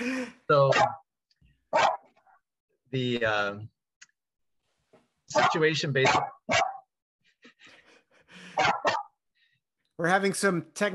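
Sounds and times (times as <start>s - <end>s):
puppy barking at home: 0.7s - 1.0s, 1.7s - 2.1s, 5.3s - 6.9s, 8.6s - 9.2s
speech: 2.9s - 3.8s, 5.3s - 6.7s, 10.0s - 10.9s.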